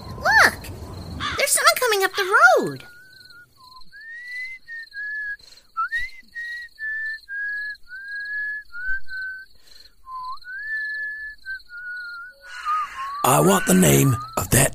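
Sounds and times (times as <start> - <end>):
high chirring of insects: 0.0 - 14.7
speech: 1.9 - 2.9, 13.2 - 14.7
person whistling a carol-like tune: 2.9 - 13.4, 14.0 - 14.4.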